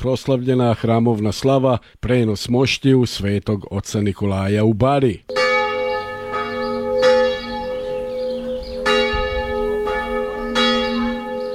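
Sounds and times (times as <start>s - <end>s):
speech: 0.0s - 5.4s
Serbian Orthodox church bell ringing in Sećuj for the feast of St Nicholas: 5.3s - 11.5s.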